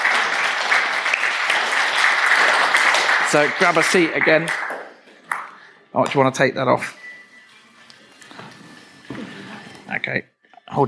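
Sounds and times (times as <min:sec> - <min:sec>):
applause from a sizable crowd: 0:00.0 - 0:05.7
speech: 0:03.3 - 0:04.6, 0:06.0 - 0:07.0, 0:10.0 - 0:10.8.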